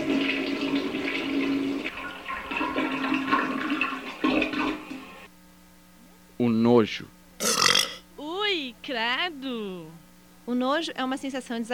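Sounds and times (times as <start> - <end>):
toilet flushing: 0.0 - 5.3
speech: 6.4 - 7.1, 8.9 - 11.7.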